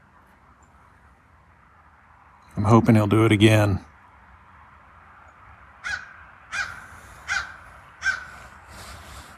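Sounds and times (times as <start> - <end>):
speech: 2.6 - 3.9
crow cawing: 5.8 - 9.3.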